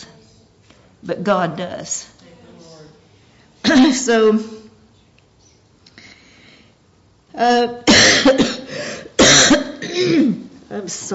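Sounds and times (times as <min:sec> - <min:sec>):
speech: 0:01.0 - 0:02.1, 0:03.8 - 0:04.6, 0:07.4 - 0:08.6, 0:09.5 - 0:11.1
harsh raspy coughs with rattling tails: 0:07.9 - 0:10.5.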